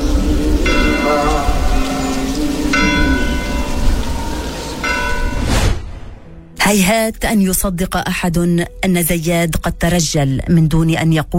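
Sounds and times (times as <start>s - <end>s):
church bell tolling: 0.0s - 5.4s
steady rain-like hiss: 0.0s - 5.8s
speech: 6.7s - 11.3s.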